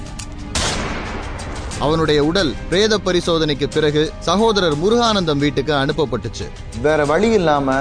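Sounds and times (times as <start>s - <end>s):
gunfire sound effect: 0.5s - 1.5s
speech: 1.9s - 7.7s.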